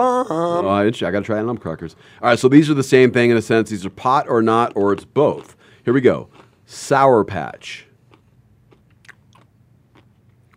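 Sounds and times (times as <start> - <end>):
speech: 0.0 - 7.9
low steady hum: 0.0 - 10.5
crunchy chewing of a snack: 4.5 - 6.9, 7.6 - 10.5.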